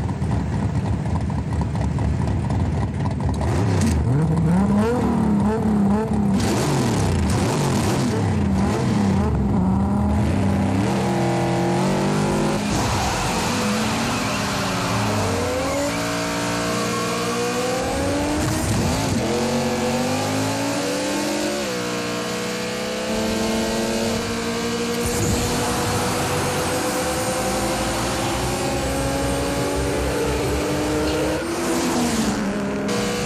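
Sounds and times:
drag racing car engines revving, including a Dodge Challenger: 0.0s - 33.2s
drag racing car tire squeal: 12.0s - 18.7s, 24.3s - 33.2s.

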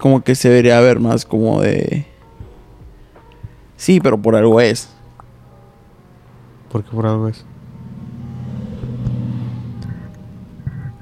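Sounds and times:
speech: 0.0s - 2.1s, 3.8s - 5.0s, 6.7s - 7.5s
many cars and motorcycles passing by outside: 4.8s - 11.0s
vehicle engine rev: 6.6s - 11.0s.

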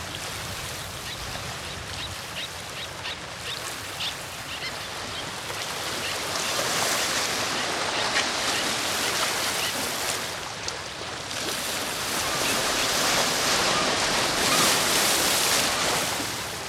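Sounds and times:
coastal waves washing in: 0.0s - 16.6s
seagulls calling: 1.0s - 10.1s, 12.0s - 15.8s.

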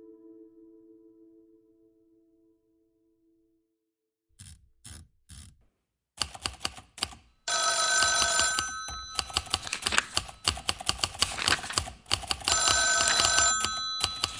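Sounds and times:
office telephones ringing in a newspaper office: 7.5s - 11.8s, 12.5s - 14.3s
typewriters clacking in a newspaper office: 8.4s - 14.3s.

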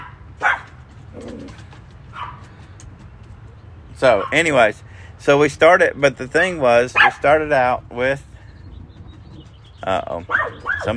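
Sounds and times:
guard dog barking: 0.0s - 0.8s, 2.1s - 2.4s, 4.2s - 4.4s, 7.0s - 7.2s, 10.2s - 10.9s
speech: 4.0s - 8.3s, 9.8s - 10.9s.

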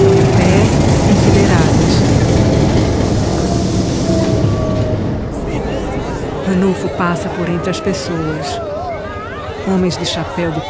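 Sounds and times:
train approaching past people beside the track: 0.0s - 10.6s
speech: 6.6s - 8.8s, 9.6s - 10.6s.

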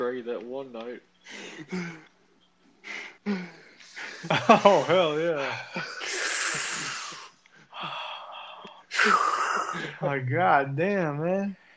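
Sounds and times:
speech: 0.1s - 2.2s, 2.8s - 3.6s, 4.2s - 6.2s, 9.0s - 11.6s
loud heavy gasping breaths: 1.2s - 2.1s, 2.8s - 4.3s, 5.4s - 10.0s
laughter: 3.9s - 6.9s.

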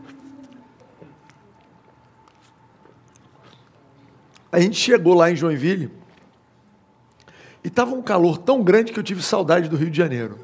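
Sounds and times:
faint steady hum: 0.0s - 10.4s
person sipping and swallowing water: 1.0s - 4.5s
speech: 4.5s - 6.0s, 7.8s - 10.4s.

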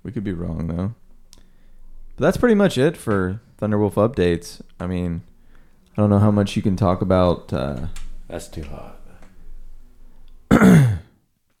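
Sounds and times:
faint hum: 0.0s - 11.5s
speech: 0.1s - 1.0s, 2.2s - 5.3s, 6.0s - 9.0s
single short harsh cough: 10.5s - 11.2s.

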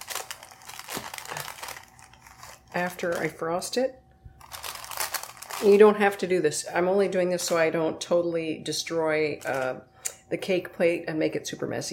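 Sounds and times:
wax paper pulled and crinkled across a cake plate: 0.0s - 6.3s, 9.3s - 9.8s
speech: 2.7s - 4.0s, 5.6s - 11.9s.

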